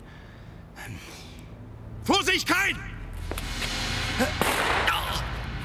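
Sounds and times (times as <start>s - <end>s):
speech: 0.9s - 1.2s, 2.1s - 3.0s, 4.2s - 4.8s
gunshot: 4.2s - 5.5s.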